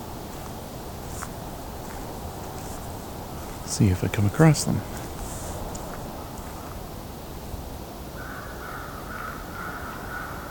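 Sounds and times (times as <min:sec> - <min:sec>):
crows cawing: 0:00.0 - 0:06.8, 0:08.2 - 0:10.5
raven calling: 0:00.0 - 0:06.9, 0:08.2 - 0:10.5
steady rushing outdoor noise: 0:00.0 - 0:08.2
speech: 0:03.7 - 0:05.0.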